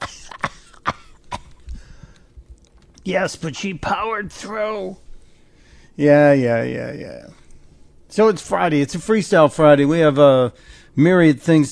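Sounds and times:
woman coughing: 0.0 - 1.6
speech: 3.1 - 5.0, 6.0 - 7.4, 8.1 - 11.7.

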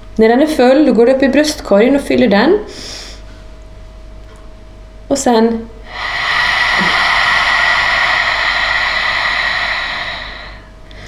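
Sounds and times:
speech: 0.2 - 3.0, 5.1 - 6.2
breathy hiss of air pushed out through an open throat in a breathing exercise: 5.7 - 11.0.

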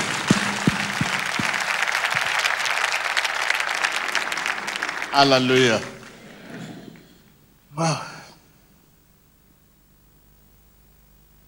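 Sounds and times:
congregation clapping and applauding: 0.0 - 7.4
speech: 5.2 - 5.9, 7.8 - 8.1.

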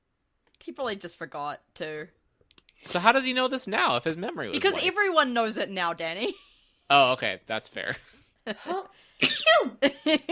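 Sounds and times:
speech: 0.7 - 2.2, 2.8 - 10.3
person sneezing: 9.2 - 9.8.

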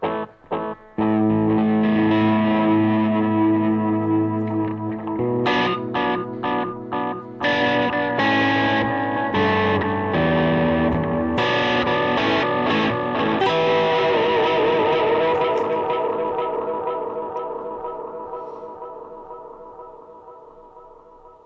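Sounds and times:
electric guitar played through a slower echo effect: 0.0 - 21.4.

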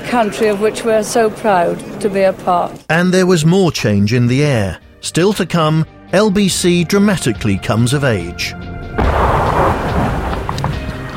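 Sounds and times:
speech: 0.1 - 9.3
heavy incoming artillery fire booming: 8.9 - 11.1.

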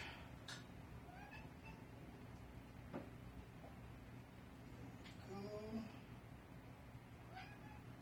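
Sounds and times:
low hum: 0.0 - 8.0
cat meowing: 1.1 - 1.9, 7.3 - 8.0.

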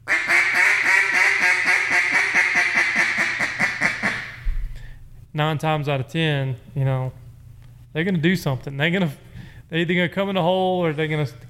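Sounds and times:
duck call blown in a boss hen sequence of raspy quacks: 0.0 - 4.4
speech: 5.4 - 7.2, 7.9 - 11.4.

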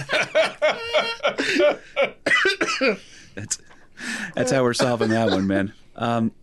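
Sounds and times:
laughter: 0.0 - 2.2, 4.4 - 5.7
man coughing: 1.4 - 3.1, 4.5 - 5.7
speech: 1.6 - 2.1, 2.8 - 6.4
man clearing his throat into a microphone: 2.2 - 3.0, 4.5 - 5.6.

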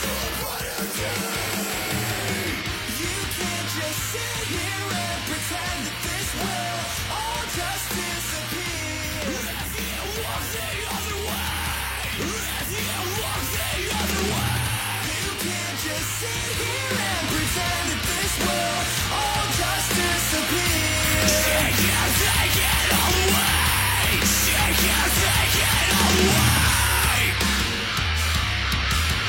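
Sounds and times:
harsh screamed vocals in a rock band track: 0.0 - 3.0, 9.2 - 27.4
heavy distorted guitars of a rock band: 0.0 - 29.2.

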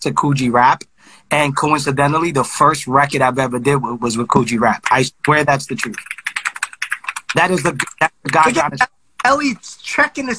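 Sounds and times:
speech: 0.0 - 6.1, 7.3 - 10.3
typing on a computer keyboard: 4.6 - 9.3.

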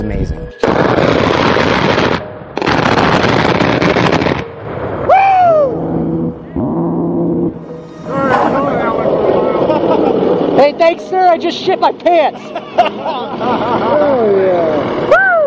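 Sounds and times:
speech: 0.0 - 1.0, 11.4 - 14.6
rolling echo of cannon fire with whining shifting tones: 0.0 - 15.4
aircraft cannon fire: 0.6 - 5.2
laughter: 8.2 - 10.5, 12.3 - 14.8.

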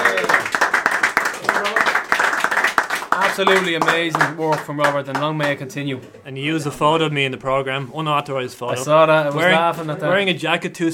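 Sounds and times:
audience applauding: 0.0 - 5.7
speech: 3.4 - 10.9.

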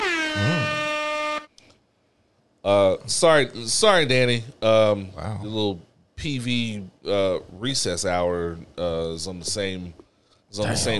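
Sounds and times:
air horn blast: 0.0 - 1.5
speech: 2.6 - 10.9.

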